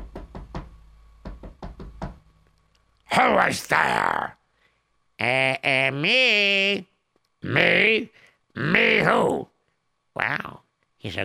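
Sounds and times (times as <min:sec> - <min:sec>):
knocking on the door of an inn: 0:00.0 - 0:02.2
low steady hum: 0:00.0 - 0:11.2
speech: 0:03.1 - 0:04.4, 0:05.2 - 0:09.5, 0:10.2 - 0:11.2.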